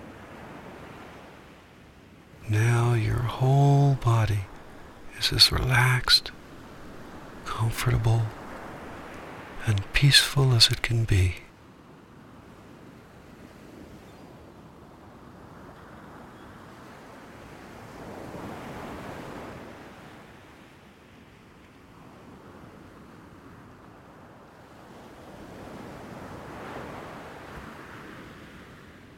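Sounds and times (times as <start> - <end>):
constant soft wash of surf: 0.0 - 14.0, 14.6 - 29.1
gentle ocean waves breaking on shore: 2.4 - 11.4
speech: 2.5 - 4.5, 5.2 - 6.4, 7.5 - 8.4, 9.6 - 11.4.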